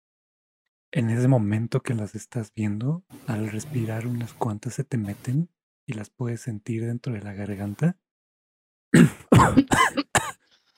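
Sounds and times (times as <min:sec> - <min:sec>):
speech: 0:00.9 - 0:08.0, 0:08.9 - 0:10.1
harsh raspy coughs: 0:09.0 - 0:10.4.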